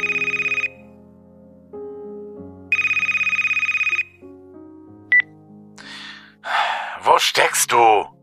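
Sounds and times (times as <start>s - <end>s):
mobile phone ringtone with buzzing bursts and melodic electronic tune: 0.0s - 0.9s, 2.7s - 4.2s
speech: 7.4s - 8.1s.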